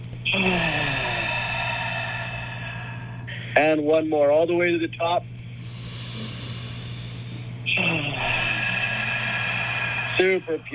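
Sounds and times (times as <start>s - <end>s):
low hum: 0.0s - 10.7s
huge breath in and long forceful exhale: 0.4s - 3.6s, 5.6s - 10.7s
speech: 3.7s - 5.3s, 10.2s - 10.7s.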